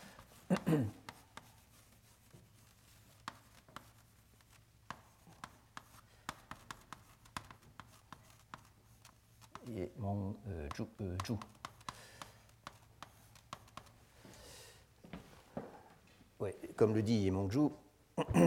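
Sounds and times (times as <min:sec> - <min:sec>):
marker tapping and scratching on a board while writing a name: 0:00.0 - 0:14.0
speech: 0:00.6 - 0:01.0, 0:10.4 - 0:11.6, 0:16.4 - 0:18.4
person making a brief vocal sound: 0:18.2 - 0:18.4.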